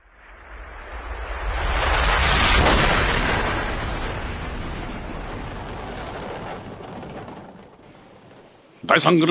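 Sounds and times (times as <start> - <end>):
deep rumbling blast at the foot of Mount Fuji: 0.5 - 9.3.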